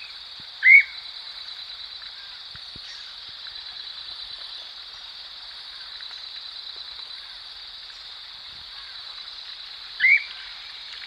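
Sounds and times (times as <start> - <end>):
streamer-tailed tyrant whistled call: 0.0 - 1.0, 10.0 - 10.4
steady high hiss: 0.0 - 11.0.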